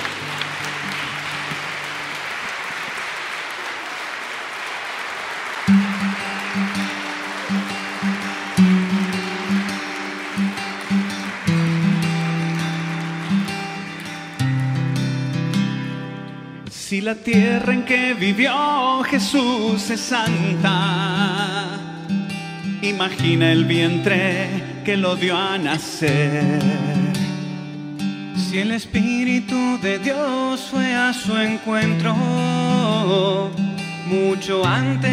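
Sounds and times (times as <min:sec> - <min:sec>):
large crowd applauding: 0:00.0 - 0:16.5, 0:17.8 - 0:26.7
speech: 0:17.0 - 0:21.7, 0:22.8 - 0:26.9, 0:28.5 - 0:35.1.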